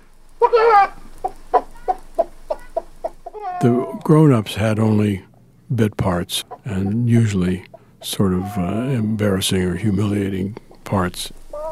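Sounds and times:
speech: 0.4 - 1.0, 3.6 - 11.4
man imitating a clucking chicken: 0.4 - 4.1, 6.3 - 9.2, 11.5 - 11.7.

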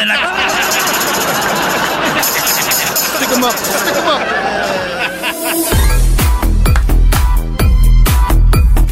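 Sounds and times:
speech: 0.0 - 0.5, 3.0 - 6.0
laughter: 0.0 - 6.0
loud song with heavy booming bass-drum beat: 5.6 - 8.9.

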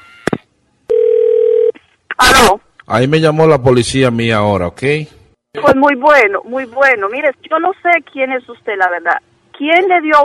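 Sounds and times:
telephone dial tone: 0.9 - 1.8
speech: 2.5 - 10.2.

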